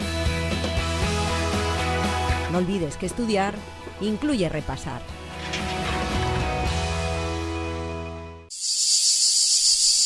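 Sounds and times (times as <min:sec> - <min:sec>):
music: 0:00.0 - 0:08.5
speech: 0:02.5 - 0:05.2
loud high-pitched cicada buzz: 0:08.5 - 0:10.0.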